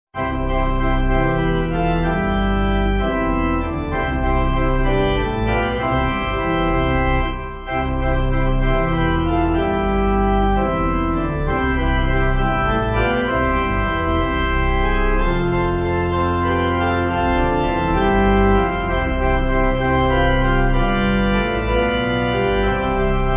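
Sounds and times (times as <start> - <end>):
pipe organ: 0.2 - 23.3.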